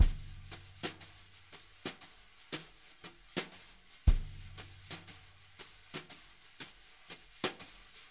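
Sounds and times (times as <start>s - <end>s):
jazz brush drum loops: 0.0s - 1.0s, 4.1s - 5.0s.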